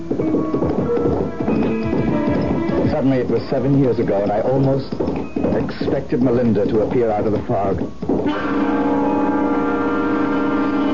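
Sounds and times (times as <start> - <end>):
faint patter: 0.0 - 8.3
ridden horse's hooves clip-clopping: 0.0 - 10.9
speech: 3.0 - 8.9.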